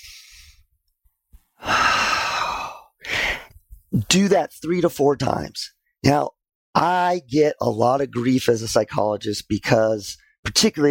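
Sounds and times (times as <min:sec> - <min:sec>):
person demonstrating a deep diaphragmatic breath: 0:00.0 - 0:00.7, 0:01.6 - 0:03.6
speech: 0:04.0 - 0:10.8.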